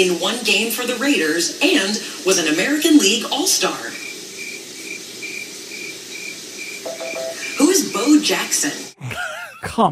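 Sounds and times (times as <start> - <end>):
speech: 0.0 - 4.0, 8.1 - 9.9
soft hiss of noise: 1.6 - 8.9
crickets chirping: 3.9 - 8.0.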